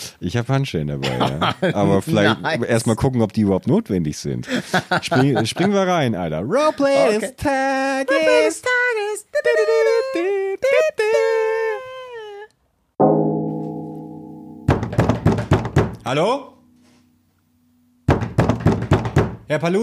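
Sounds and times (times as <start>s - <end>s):
speech: 0.1s - 11.4s, 16.1s - 16.6s, 19.5s - 19.8s
laughter: 1.0s - 2.4s, 4.5s - 5.9s
person calling out: 1.8s - 2.4s, 6.6s - 12.5s
steady tone: 13.0s - 15.0s, 16.3s - 18.1s
knocking on a door: 14.7s - 16.0s, 18.1s - 19.5s.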